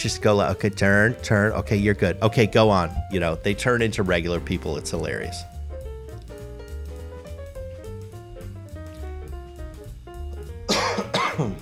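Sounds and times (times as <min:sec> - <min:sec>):
speech: 0:00.0 - 0:05.5
music with sustained tones: 0:00.0 - 0:11.6
person coughing: 0:10.7 - 0:11.6.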